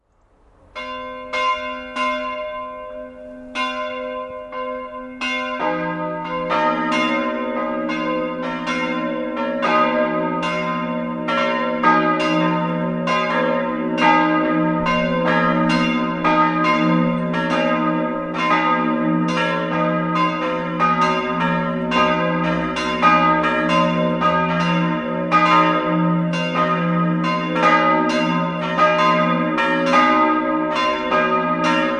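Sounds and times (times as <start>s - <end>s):
bells ringing in Greding: 0.8s - 31.9s.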